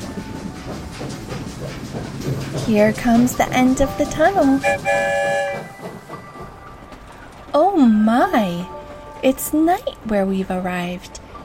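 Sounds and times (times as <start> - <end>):
train rumbling along tracks through a city at night: 0.0 - 11.4
speech: 2.7 - 5.6, 7.6 - 11.2
train horn blaring in a steady chord: 4.4 - 5.8.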